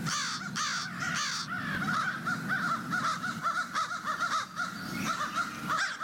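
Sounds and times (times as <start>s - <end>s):
several crows cawing back and forth: 0.0s - 6.0s.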